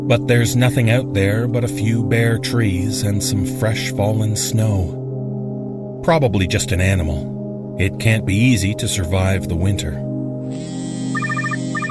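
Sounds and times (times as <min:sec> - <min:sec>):
speech: 0:00.0 - 0:05.0, 0:06.0 - 0:10.7
cell phone ringing with chirping electronic beeps: 0:10.6 - 0:11.9.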